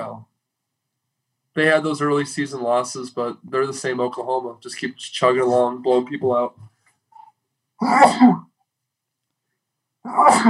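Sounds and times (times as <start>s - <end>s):
speech: 1.6s - 6.7s, 7.8s - 8.5s, 10.0s - 10.4s
loud sneezes: 7.8s - 8.5s, 10.0s - 10.4s.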